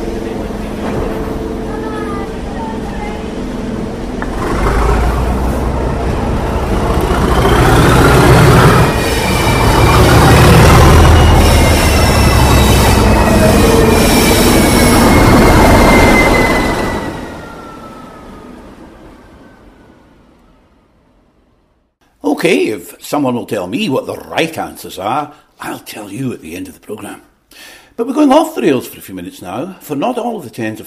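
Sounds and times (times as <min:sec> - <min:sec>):
heritage railway train pulling away: 0:00.0 - 0:21.9
squealing train wheels: 0:04.2 - 0:20.0
speech: 0:22.4 - 0:30.8.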